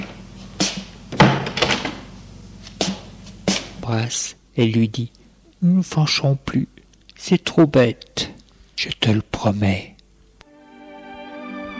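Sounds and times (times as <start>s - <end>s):
door pushed shut with a solid thud: 1.1s - 2.0s
speech: 3.9s - 9.9s.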